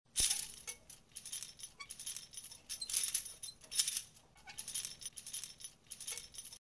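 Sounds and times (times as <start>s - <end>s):
swinging chandelier: 0.1s - 6.6s.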